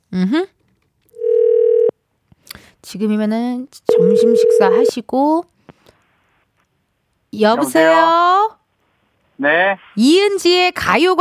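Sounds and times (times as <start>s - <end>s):
speech: 0.1s - 0.6s, 2.9s - 5.5s, 7.4s - 8.6s, 9.4s - 11.1s
electronic phone dial tone beep: 3.9s - 4.9s.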